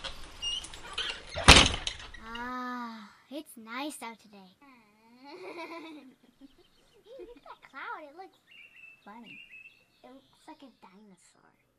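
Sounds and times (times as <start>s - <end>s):
door sliding shut: 0.0s - 2.3s
faint rustling: 0.0s - 11.7s
speech: 3.5s - 11.7s
laughter: 5.2s - 7.5s.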